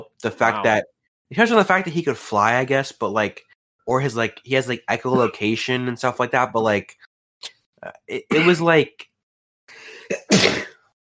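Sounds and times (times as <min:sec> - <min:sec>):
speech: 0:00.1 - 0:09.1
person sneezing: 0:05.1 - 0:05.3, 0:08.3 - 0:08.6, 0:09.9 - 0:10.8.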